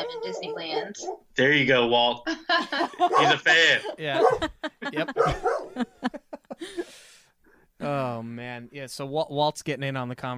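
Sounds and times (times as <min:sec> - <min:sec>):
dog barking in short sharp yips: 0:00.0 - 0:01.2, 0:03.0 - 0:04.5, 0:05.1 - 0:05.9
speech: 0:00.0 - 0:07.0, 0:07.8 - 0:10.3
laughter: 0:02.3 - 0:06.9.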